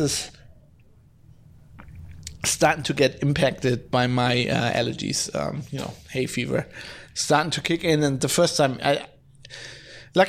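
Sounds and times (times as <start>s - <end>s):
speech: 0.0s - 0.4s, 2.4s - 10.2s
low steady hum: 0.0s - 10.2s
person drinking water with wet sips: 1.8s - 2.4s.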